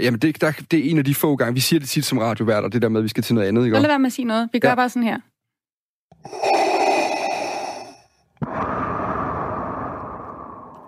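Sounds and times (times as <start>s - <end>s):
speech: 0.0s - 5.3s, 6.2s - 6.7s
heavy mechanical respirator breathing: 6.2s - 10.8s.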